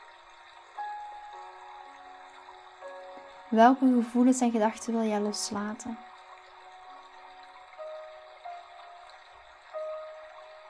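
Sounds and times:
flowing river water: 0.0 - 10.6
speech: 3.5 - 6.1.

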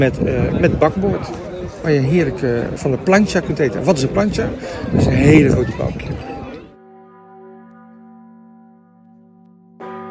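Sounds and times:
speech: 0.0 - 6.3
church bells ringing from cathedral tower: 6.7 - 10.0.

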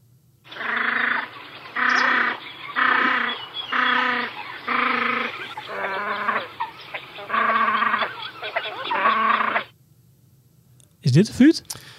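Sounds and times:
faint low noise: 0.0 - 11.9
great crested grebe courtship calls: 0.5 - 9.7
speech: 11.2 - 11.9.

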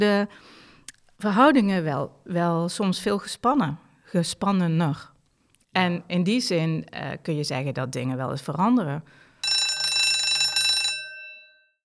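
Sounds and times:
speech: 0.0 - 0.6, 1.2 - 5.1, 5.8 - 9.2
bright electric bell ringing: 9.4 - 11.8.

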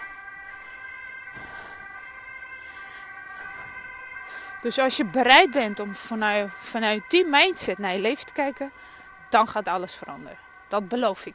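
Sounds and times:
ambulance siren wailing as it passes: 0.0 - 11.3
low traffic rumble: 0.3 - 8.3
speech: 4.6 - 11.3.

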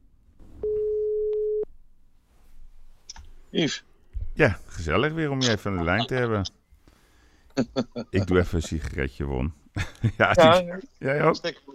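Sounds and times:
telephone ringback tone while placing call: 0.6 - 1.6
speech: 3.5 - 6.6, 7.6 - 11.7
laughter: 7.6 - 8.5, 9.8 - 10.7.

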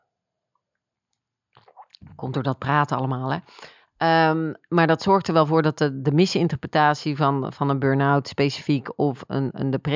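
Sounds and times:
person sipping a drink: 1.5 - 2.1
speech: 2.1 - 9.9.

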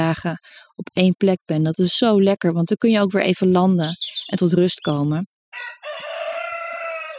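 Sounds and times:
speech: 0.1 - 6.0
rooster crowing: 5.5 - 7.1.

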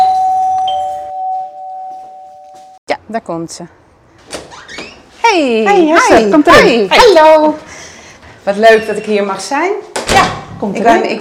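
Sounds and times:
doorbell two-note ding-dong chime: 0.0 - 2.8
speech: 3.1 - 3.8, 5.3 - 7.7, 8.4 - 11.1.

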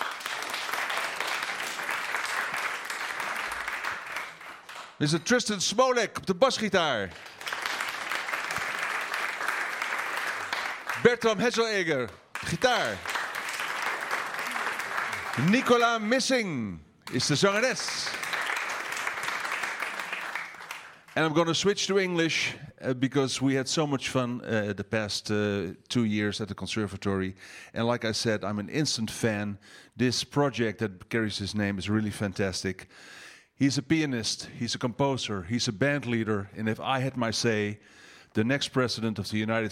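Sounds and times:
dense applause from a sizable crowd for band members: 0.0 - 5.1, 6.9 - 16.3, 17.1 - 21.2
man's amplified voice speaking: 5.0 - 7.2, 10.9 - 13.1, 15.3 - 18.3, 21.2 - 32.8, 33.6 - 37.8, 38.4 - 39.7
speech: 5.0 - 7.4, 11.0 - 13.1, 15.4 - 18.1, 21.2 - 39.7.

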